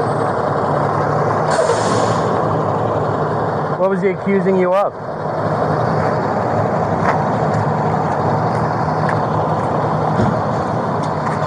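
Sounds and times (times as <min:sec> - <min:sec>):
loud truck engine rumbling: 0:00.0 - 0:11.4
truck air brakes hissing: 0:01.5 - 0:02.4
speech: 0:03.9 - 0:05.1.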